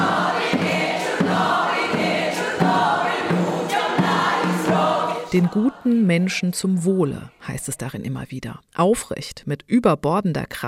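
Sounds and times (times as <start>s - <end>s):
group of women singing a Ukrainian Shchedrivka carol: 0.0s - 6.4s
speech: 5.3s - 10.6s.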